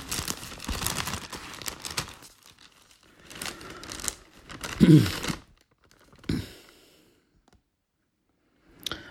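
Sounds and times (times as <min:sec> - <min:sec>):
Bible paper pages rustling as they are flipped: 0:00.0 - 0:06.4.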